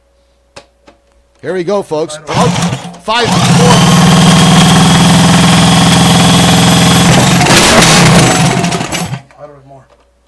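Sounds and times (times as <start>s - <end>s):
speech: 1.4s - 4.2s
engine idling just after being started with the choke on: 2.3s - 9.3s.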